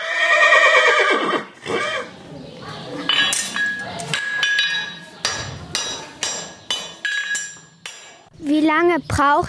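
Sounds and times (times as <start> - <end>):
horse letting out a loud whinny: 0.0 - 2.1
metallic hammer clanks as a horse is being shod: 3.1 - 8.2
speech: 9.0 - 9.4.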